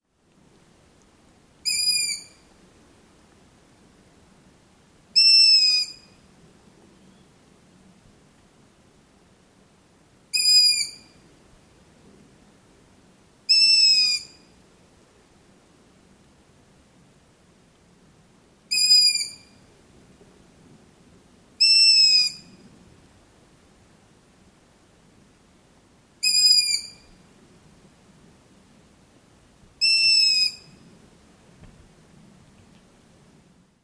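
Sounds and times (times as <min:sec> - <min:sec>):
long-eared owl Asio otus: 0:01.6 - 0:02.4, 0:05.2 - 0:06.1, 0:10.3 - 0:11.2, 0:13.5 - 0:14.4, 0:18.7 - 0:19.5, 0:21.6 - 0:22.5, 0:26.2 - 0:27.1, 0:29.8 - 0:30.8.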